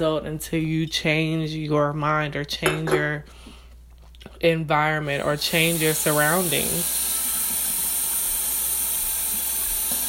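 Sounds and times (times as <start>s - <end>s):
speech: 0.0s - 3.4s, 4.2s - 7.1s
tap running as someone gets water: 5.1s - 10.0s.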